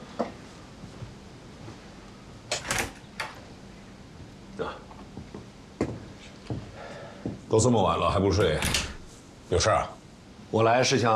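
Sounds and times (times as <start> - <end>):
door opening with click, rattling clatter and thud: 2.5 - 3.4, 8.4 - 9.1
speech: 7.5 - 8.9, 9.5 - 11.1.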